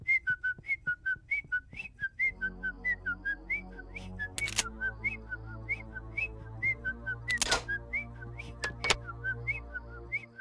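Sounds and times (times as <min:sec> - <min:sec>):
person whistling a repetitive melody: 0:00.0 - 0:10.3
sharp clicks: 0:04.4 - 0:04.7, 0:07.3 - 0:07.7, 0:08.6 - 0:09.0.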